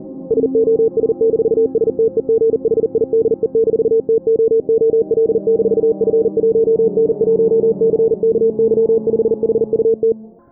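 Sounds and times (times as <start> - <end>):
filtered Morse code signal: 0.0 - 10.2.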